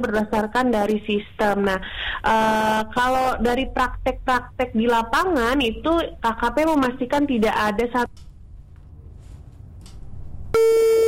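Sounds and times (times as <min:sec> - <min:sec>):
speech: 0:00.0 - 0:08.3, 0:10.6 - 0:11.0
phone busy tone after a call is cut off: 0:10.6 - 0:11.0.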